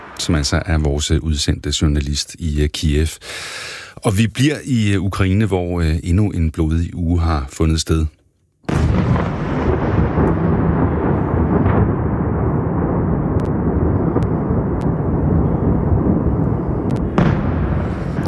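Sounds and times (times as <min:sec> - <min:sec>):
explosions from attacks on a city at night: 0:00.0 - 0:01.7, 0:08.7 - 0:18.2
speech: 0:00.2 - 0:08.2.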